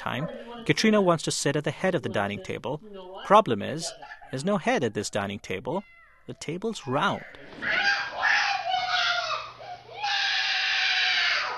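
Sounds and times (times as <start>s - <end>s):
speech: 0.0s - 7.9s
girl screaming in an angry tantrum: 7.6s - 11.5s.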